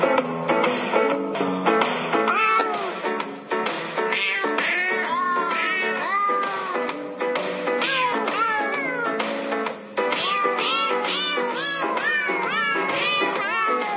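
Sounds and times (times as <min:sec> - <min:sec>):
backing music arrangement: 0:00.0 - 0:13.9
cat meows pitched and edited into a Christmas song melody: 0:02.2 - 0:03.1, 0:04.1 - 0:07.0, 0:07.7 - 0:09.3, 0:10.0 - 0:13.9.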